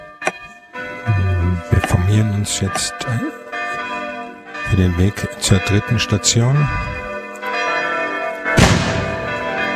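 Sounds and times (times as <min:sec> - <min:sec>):
parish church bells ringing: 0:00.0 - 0:09.7
speech: 0:02.1 - 0:03.4, 0:04.7 - 0:07.0
ceremonial gun salute booming: 0:08.6 - 0:09.2.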